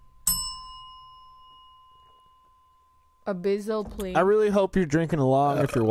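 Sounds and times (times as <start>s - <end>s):
small bell struck: 0.0s - 3.3s
speech: 3.3s - 5.9s.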